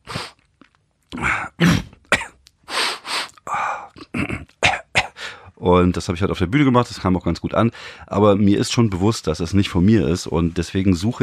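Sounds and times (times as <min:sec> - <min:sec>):
speech: 0:01.1 - 0:01.8, 0:05.7 - 0:11.2
man imitating an older man's grunts, coughs and throat-clearing: 0:01.1 - 0:02.4, 0:03.4 - 0:05.2.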